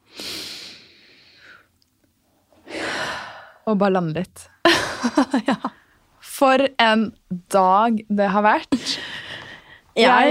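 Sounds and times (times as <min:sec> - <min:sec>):
deep breathing close to the microphone: 0:00.0 - 0:01.7, 0:02.6 - 0:03.6, 0:08.8 - 0:10.0
speech: 0:03.7 - 0:05.7, 0:06.4 - 0:09.1, 0:10.0 - 0:10.2.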